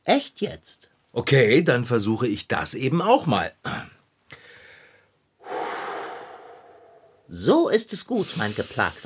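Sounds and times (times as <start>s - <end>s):
speech: 0.1s - 4.0s, 7.3s - 9.0s
slow deep calm breathing: 4.3s - 7.3s.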